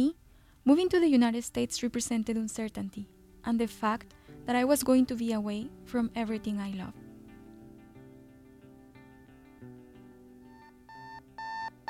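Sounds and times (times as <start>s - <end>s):
speech: 0.0s - 7.0s
alarm clock playing a melodic electronic tune: 10.5s - 11.8s.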